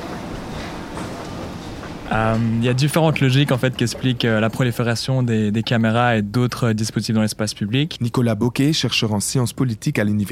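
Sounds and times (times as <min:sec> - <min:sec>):
running train in the STIB metro station at Gare du Midi: 0:00.0 - 0:07.8
speech: 0:02.1 - 0:10.2.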